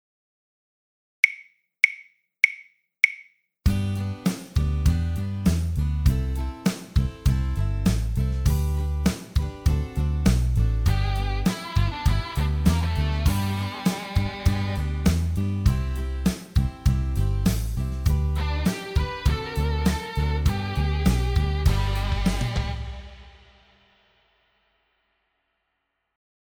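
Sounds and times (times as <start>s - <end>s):
rock duo backing track: 3.7s - 23.1s.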